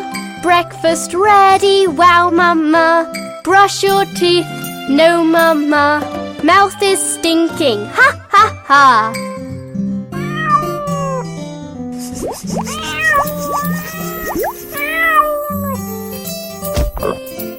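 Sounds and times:
speech: 0.4 - 9.3
musical backing: 10.1 - 17.5
kitten meowing: 10.2 - 11.3, 12.5 - 15.9.

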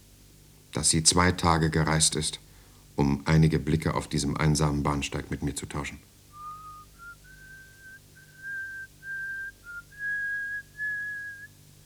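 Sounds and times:
steady low hum: 0.0 - 11.8
speech: 0.8 - 6.2
woman whistling a song on a lonely railway platform: 6.3 - 11.6.

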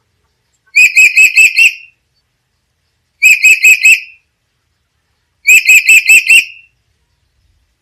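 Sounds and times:
Black-capped lory calling: 0.7 - 1.9, 3.2 - 4.2, 5.4 - 6.7.

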